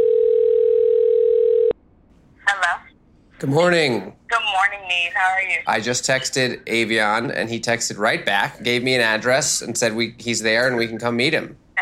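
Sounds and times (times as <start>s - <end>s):
steady single-pitched telephone tone as a call is placed: 0.0s - 1.8s
speech: 3.4s - 4.2s, 4.9s - 11.8s.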